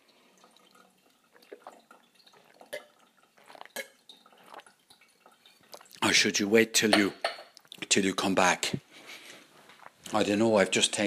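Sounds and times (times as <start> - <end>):
water from a tap filling a glass: 0.0 - 7.0
speech: 6.1 - 7.3, 7.9 - 8.8, 10.1 - 11.0.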